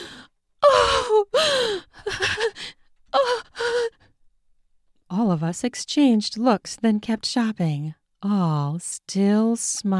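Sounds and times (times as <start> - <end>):
person gasping frantically: 0.0 - 4.0
speech: 5.4 - 9.9.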